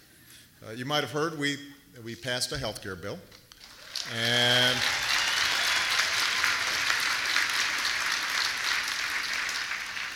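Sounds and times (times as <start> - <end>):
speech: 0.6 - 3.4, 4.1 - 5.0
audience applause during a political speech: 3.6 - 10.1.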